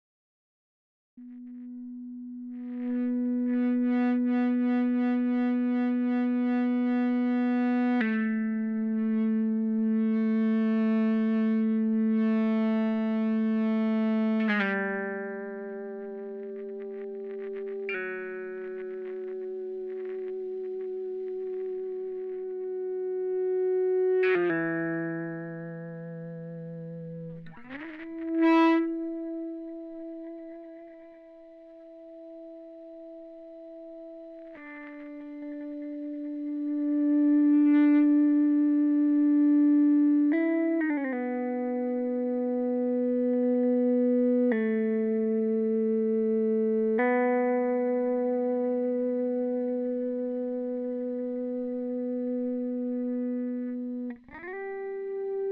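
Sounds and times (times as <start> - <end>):
dry Ebow guitar tone on Em7: 1.2 - 55.5.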